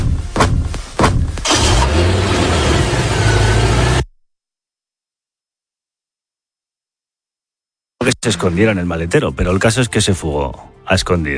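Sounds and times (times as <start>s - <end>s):
white car engine rumbling as it pulls away: 1.2s - 4.0s
white car engine cranking and starting: 1.4s - 4.1s
speech: 8.1s - 11.3s.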